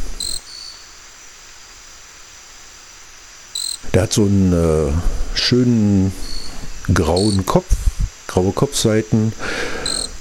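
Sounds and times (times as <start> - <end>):
small bird in undergrowth giving insect-like calls: 0.0 - 3.9, 6.2 - 7.7, 9.7 - 10.1
quiet hiss: 0.0 - 10.1
speech: 3.9 - 9.8.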